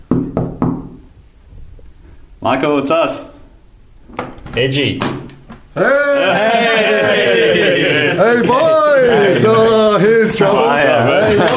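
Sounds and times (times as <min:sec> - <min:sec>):
knocking on a wooden hotel suite door: 0:00.1 - 0:01.0
speech: 0:02.4 - 0:03.4, 0:04.6 - 0:05.2, 0:05.8 - 0:07.4, 0:08.2 - 0:11.5
laughter: 0:05.8 - 0:11.5.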